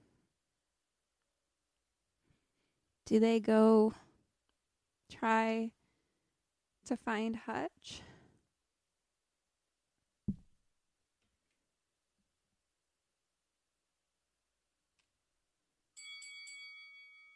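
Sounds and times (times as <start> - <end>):
speech: 3.1 - 4.0, 5.1 - 5.8, 6.9 - 8.1
dull knock: 10.3 - 10.5
bright sustained shimmering bell chime: 16.0 - 17.3.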